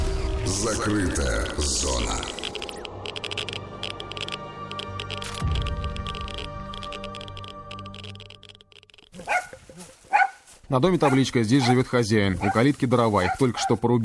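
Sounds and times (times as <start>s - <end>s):
sustained musical tones: 0.2s - 10.0s
speech: 0.5s - 2.4s, 10.7s - 14.0s
dog barking in neighbouring yard: 9.2s - 10.4s, 11.0s - 11.8s, 12.4s - 12.6s, 13.2s - 13.8s.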